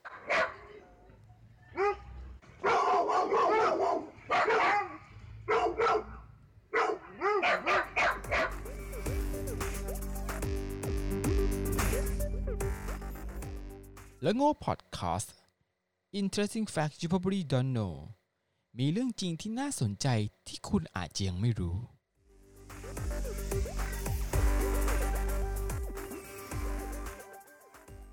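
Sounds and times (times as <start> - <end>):
dog barking and yipping: 0.0 - 0.8, 1.7 - 8.9
music: 7.8 - 14.2, 22.2 - 28.1
speech: 14.2 - 15.4, 16.1 - 18.2, 18.8 - 21.9.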